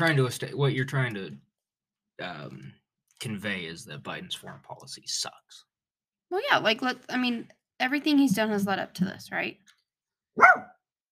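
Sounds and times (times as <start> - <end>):
speech: 0.0 - 1.5, 2.2 - 5.7, 6.3 - 9.7, 10.4 - 10.7
dog barking: 10.4 - 10.8.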